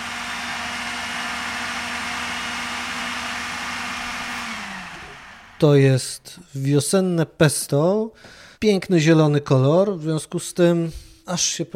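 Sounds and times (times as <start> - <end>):
kitchen blender puréeing pesto ingredients at high speed: 0.0 - 5.8
speech: 5.6 - 11.7.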